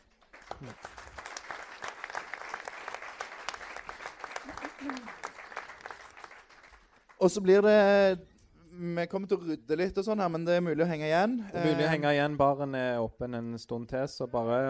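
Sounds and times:
audience applauding at an evening gathering: 0:00.0 - 0:07.5
speech: 0:00.6 - 0:01.0, 0:04.8 - 0:05.3, 0:07.2 - 0:14.6.

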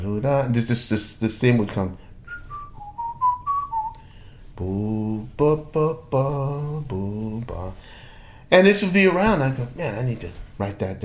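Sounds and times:
speech: 0:00.1 - 0:02.1, 0:04.6 - 0:11.0
whistled melody: 0:02.3 - 0:04.0
person singing or humming the tune: 0:04.6 - 0:07.8.

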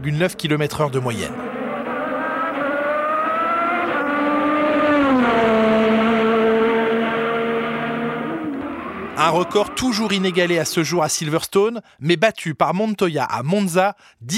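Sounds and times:
speech: 0:00.0 - 0:01.5, 0:09.2 - 0:14.3
1985 Williams Formula 1 race car Honda turbo engine screaming at high revs: 0:00.9 - 0:11.2.

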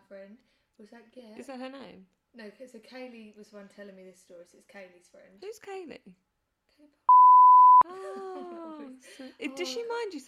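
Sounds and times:
speech: 0:00.1 - 0:07.1, 0:07.9 - 0:10.2
electronic censor beep over a spoken name: 0:07.1 - 0:07.8.

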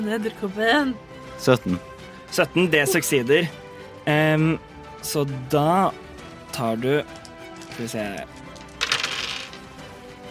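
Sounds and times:
speech: 0:00.0 - 0:07.2, 0:07.8 - 0:08.5
dice rattling and clattering across a hard surface: 0:07.0 - 0:09.8.

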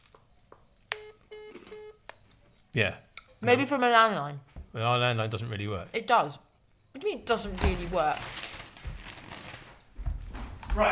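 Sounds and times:
iPhone electronic keypad tones: 0:00.9 - 0:02.1
speech: 0:02.8 - 0:06.4, 0:07.0 - 0:08.4.

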